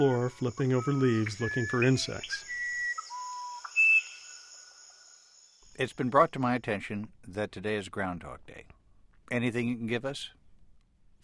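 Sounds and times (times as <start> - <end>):
speech: 0.0 - 2.5, 5.8 - 10.4
musician wren, a small brown Amazonian bird, singing: 0.0 - 5.8.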